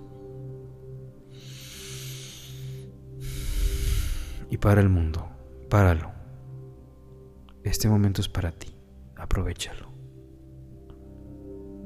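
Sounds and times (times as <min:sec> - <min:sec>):
deep breath in and out: 0:01.2 - 0:04.5
speech: 0:04.5 - 0:06.1, 0:07.6 - 0:08.7, 0:09.3 - 0:09.9.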